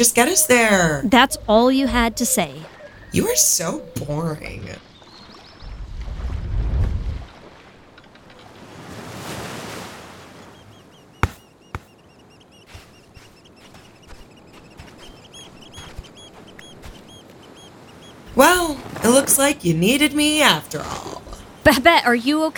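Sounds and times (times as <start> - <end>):
speech: 0.0 - 4.9, 18.4 - 22.5
boat engine rumble: 0.0 - 22.5
water knocks and slaps against boat hull: 4.8 - 19.4.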